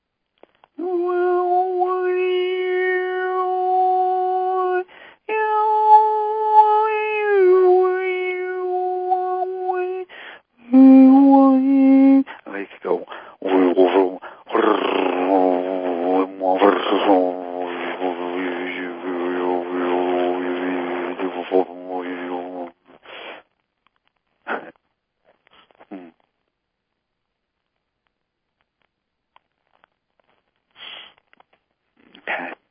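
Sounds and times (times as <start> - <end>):
person imitating the meowing of a pet cat: 0.8 - 10.1, 10.7 - 12.3, 13.4 - 22.8.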